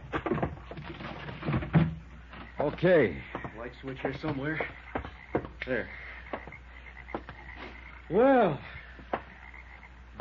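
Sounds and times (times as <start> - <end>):
objects dragged and shoved away from a door: 0.0 - 5.6
speech: 2.6 - 4.8, 5.6 - 6.0, 8.1 - 8.8.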